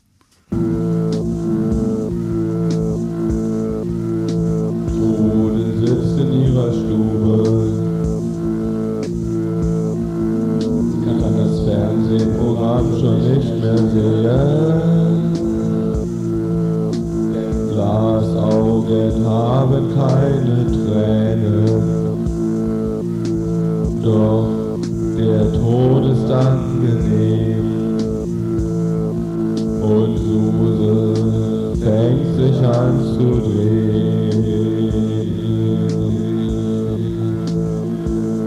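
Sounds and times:
Roland 606 drum machine beat: 0.5 - 38.4
layered sustained melodic parts: 0.5 - 38.4
wavering lead line: 0.5 - 38.4.

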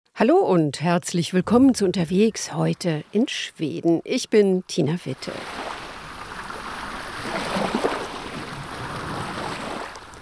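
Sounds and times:
speech: 0.2 - 5.6
water splashing against a boat heading into the Stockholm archipelago skerries: 5.2 - 10.2.

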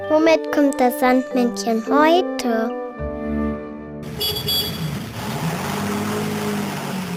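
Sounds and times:
speech: 0.2 - 2.8
car engine humming and rattling while driving: 4.0 - 7.1.

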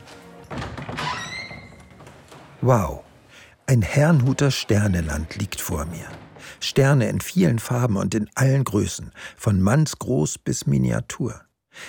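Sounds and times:
door to an upstairs exhibition room opening: 0.0 - 8.0
low noise: 0.0 - 11.4
speech: 2.6 - 3.0, 3.7 - 11.8.

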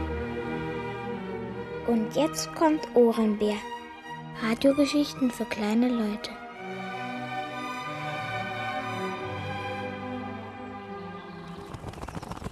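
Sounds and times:
sustained tuneful musical passage: 0.0 - 11.4
speech: 1.8 - 3.8, 4.4 - 6.4
rapid wing flapping of a crow arriving: 11.4 - 12.4.

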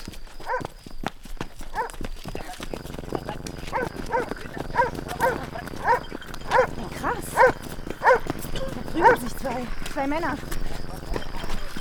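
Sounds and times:
clattering footsteps: 0.0 - 11.7
steady low hum: 1.8 - 11.7
dog barking aggressively: 3.6 - 9.6
speech: 10.0 - 10.6.

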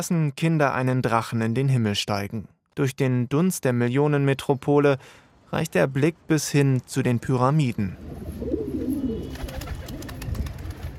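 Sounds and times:
speech: 0.0 - 8.6
pigeons cooing in open wooden lofts: 8.1 - 10.4
pigeons taking off and landing on a painted tower: 8.1 - 10.9.

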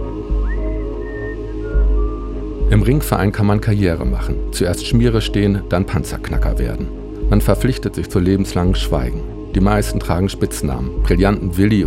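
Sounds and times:
person whistling a short melody: 0.0 - 3.0
speech: 2.7 - 11.8.

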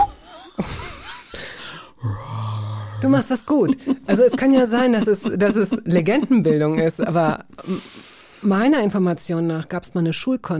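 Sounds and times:
person imitating a brown bear growling: 2.0 - 3.4
speech: 3.0 - 10.5
laughter: 3.1 - 7.8.

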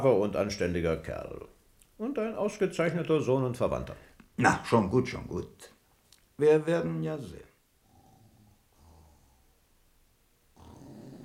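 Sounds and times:
speech: 0.0 - 5.7, 6.4 - 7.5
man snoring heavily in sleep: 7.9 - 9.5, 10.6 - 11.2.

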